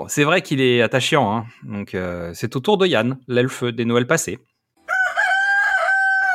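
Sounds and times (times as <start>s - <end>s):
speech: 0.1s - 4.5s
rooster crowing: 4.8s - 6.3s.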